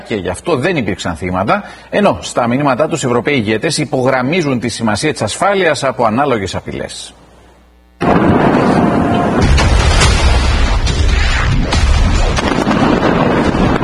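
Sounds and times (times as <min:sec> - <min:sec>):
speech: 0:00.1 - 0:07.2
sea drone exploding powerfully at a port: 0:08.0 - 0:13.8.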